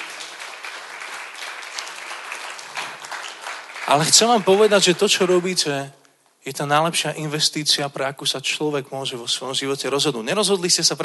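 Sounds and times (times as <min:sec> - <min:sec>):
crowd applauding: 0:00.0 - 0:05.7
speech: 0:03.9 - 0:11.0.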